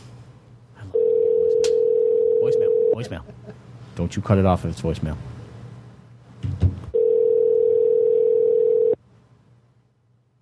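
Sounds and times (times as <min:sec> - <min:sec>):
steady telephone tone on a call: 0:01.0 - 0:03.0, 0:07.0 - 0:09.0
speech: 0:03.0 - 0:05.3.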